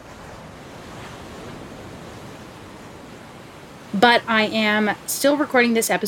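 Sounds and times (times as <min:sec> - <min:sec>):
ocean waves breaking on a beach: 0:00.0 - 0:06.0
speech: 0:03.9 - 0:06.0.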